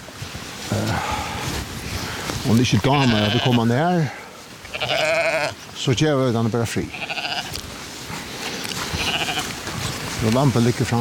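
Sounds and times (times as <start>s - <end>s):
broad rustling noise: 0.0s - 10.9s
speech: 2.5s - 4.2s, 5.8s - 7.1s, 10.2s - 10.9s
young lamb bleating: 2.8s - 3.6s, 4.6s - 5.6s, 6.8s - 7.6s, 8.8s - 9.6s.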